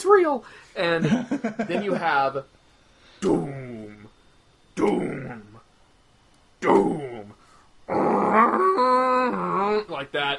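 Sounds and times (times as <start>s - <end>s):
speech: 0.1s - 2.6s, 3.2s - 3.7s, 4.8s - 5.5s, 7.9s - 10.3s
person vocally imitating a giant monster roar: 4.8s - 5.6s, 6.6s - 7.3s, 7.9s - 9.9s.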